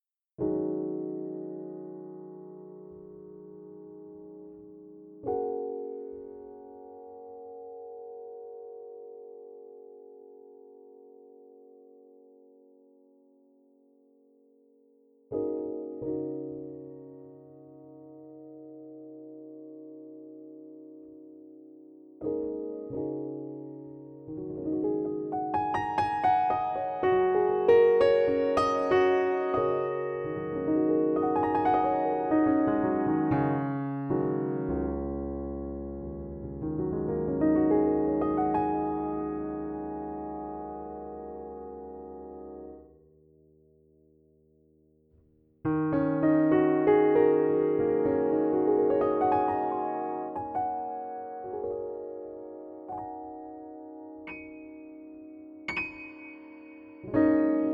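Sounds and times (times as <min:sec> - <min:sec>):
soft Pianoteq piano with close mics: 0:00.0 - 0:57.7.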